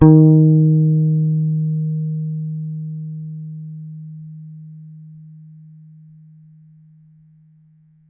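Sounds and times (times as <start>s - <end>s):
high E flat electric bass one-shot note: 0.0s - 5.4s.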